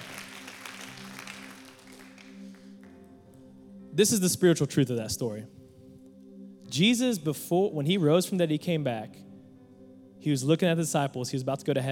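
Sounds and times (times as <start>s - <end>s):
audience applause of many hands clapping: 0.0s - 3.0s
speech: 4.0s - 5.6s, 6.8s - 9.2s, 10.2s - 11.9s.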